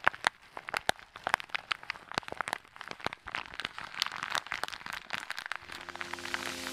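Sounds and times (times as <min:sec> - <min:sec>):
crisp crinkling as an ASMR trigger: 0:00.0 - 0:06.7
soft sustained musical tone: 0:05.6 - 0:06.7.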